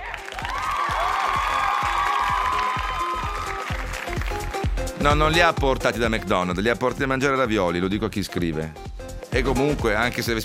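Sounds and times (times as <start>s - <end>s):
crowd applause: 0.0s - 4.7s
speech: 5.0s - 10.4s.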